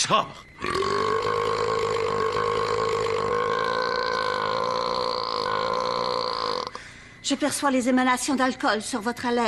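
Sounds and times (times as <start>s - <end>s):
speech: 0.1s - 1.0s, 7.3s - 9.4s
man burping: 0.6s - 6.8s.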